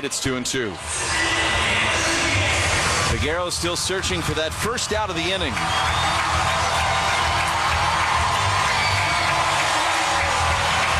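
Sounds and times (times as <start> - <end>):
speech: 0.0 - 1.3, 3.1 - 6.5
large stadium crowd cheering at a baseball game: 0.0 - 10.9.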